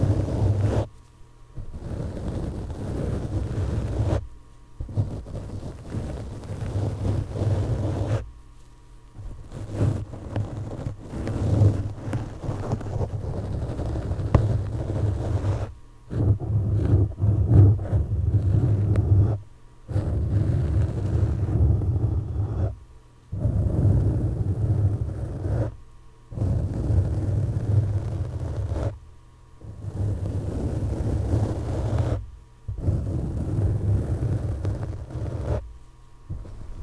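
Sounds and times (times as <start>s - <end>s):
gloved fingers scratching and rubbing across a microphone: 0.0s - 1.0s, 1.6s - 8.3s, 9.2s - 29.0s, 29.6s - 36.8s.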